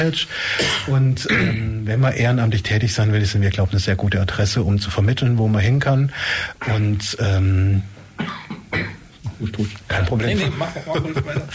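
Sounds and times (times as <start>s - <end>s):
speech: 0.0s - 11.5s
person coughing: 0.5s - 1.8s, 8.2s - 9.0s
laughter: 10.4s - 11.5s.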